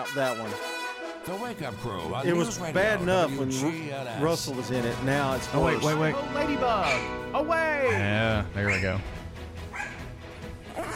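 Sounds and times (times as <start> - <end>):
speech: 0.0 - 9.2
dog barking and yipping frantically: 6.8 - 7.2, 7.8 - 9.0, 9.7 - 10.1, 10.7 - 10.9.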